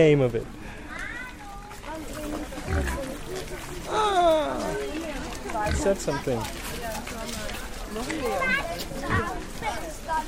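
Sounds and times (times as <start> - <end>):
speech: 0.0 - 0.6, 5.6 - 10.2
steady murmur of people: 0.0 - 10.2
domestic pigs grunting and squealing: 2.6 - 4.1, 5.6 - 6.0, 9.0 - 9.4.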